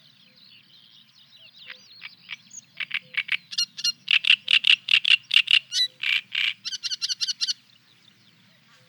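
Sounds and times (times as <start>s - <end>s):
great reed warbler singing: 0.0s - 8.8s.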